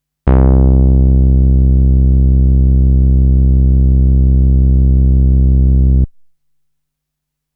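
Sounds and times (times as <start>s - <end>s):
dark bass note in C: 0.3s - 6.1s.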